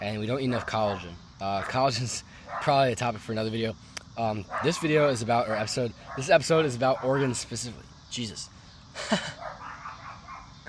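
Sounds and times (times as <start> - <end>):
speech: 0.1 - 9.5
dog barking: 0.5 - 1.8, 2.5 - 2.8, 4.5 - 5.0, 6.1 - 7.4, 9.3 - 10.6.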